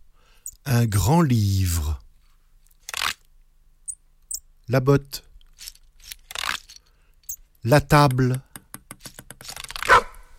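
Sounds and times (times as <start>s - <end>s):
speech: 0.7s - 2.0s, 4.7s - 5.7s, 7.6s - 8.5s
dog barking: 9.9s - 10.2s.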